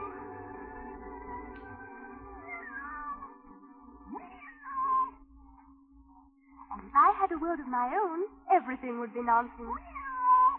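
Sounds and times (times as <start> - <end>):
cat meowing: 2.4 - 3.4, 4.1 - 5.2, 9.7 - 10.5
speech: 7.3 - 9.9.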